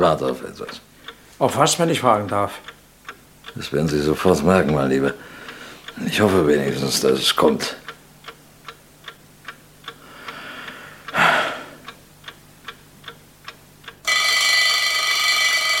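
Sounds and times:
speech: 0.0s - 2.8s, 3.6s - 5.3s, 6.0s - 7.8s
clock ticking softly: 0.0s - 11.2s, 11.8s - 15.7s
short breathy sigh: 10.1s - 11.9s
alarm clock on bedside table with metallic ringing: 14.0s - 15.7s.

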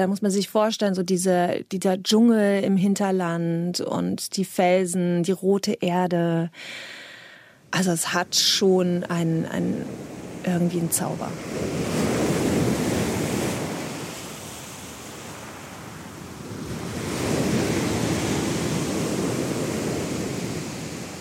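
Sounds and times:
speech: 0.0s - 7.0s, 7.7s - 11.9s
ocean waves breaking on shore: 7.6s - 21.2s
steady wind noise: 9.7s - 21.2s.

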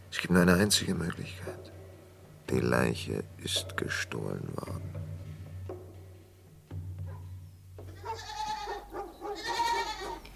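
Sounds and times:
speech: 0.2s - 1.7s, 2.5s - 5.0s
goat bleating: 7.8s - 10.3s.

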